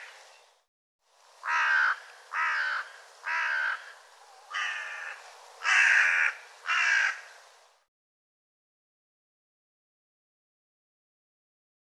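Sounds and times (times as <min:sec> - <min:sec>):
bird giving harsh raspy caws: 0:01.4 - 0:07.4.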